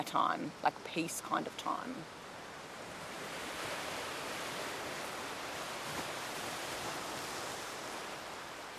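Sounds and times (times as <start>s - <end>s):
speech: 0.0s - 2.2s
ocean waves washing onto a beach: 0.0s - 8.7s.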